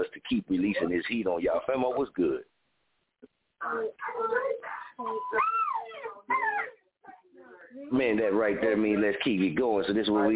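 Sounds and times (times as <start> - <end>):
speech: 0.2 - 2.5, 3.2 - 10.3
dog whining, yowling and yipping: 5.1 - 6.8.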